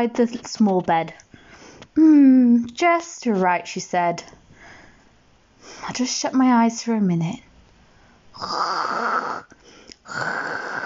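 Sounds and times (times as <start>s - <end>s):
speech: 0.0s - 1.3s, 2.0s - 4.4s, 5.6s - 7.5s, 8.4s - 10.8s
person asleep in a small bed snoring: 8.4s - 10.8s.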